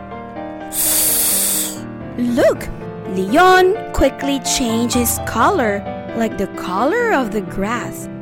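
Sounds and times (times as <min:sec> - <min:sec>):
soft music: 0:00.0 - 0:08.2
loud sustained snake hiss: 0:00.7 - 0:01.9
speech: 0:02.2 - 0:08.1.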